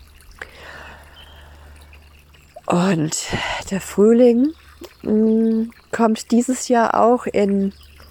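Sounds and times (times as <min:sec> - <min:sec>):
forest brook babbling: 0:00.0 - 0:08.1
water drip or splash: 0:00.0 - 0:08.1
speech: 0:02.7 - 0:07.9.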